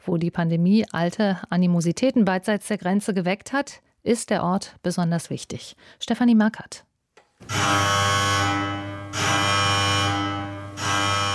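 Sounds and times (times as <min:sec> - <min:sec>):
speech: 0:00.0 - 0:08.3
electric alarm buzzer in an old fortress: 0:07.4 - 0:11.3.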